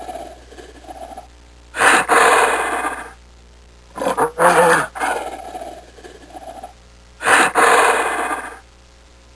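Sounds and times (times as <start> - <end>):
gorilla: 0.0 - 3.2, 3.9 - 8.6.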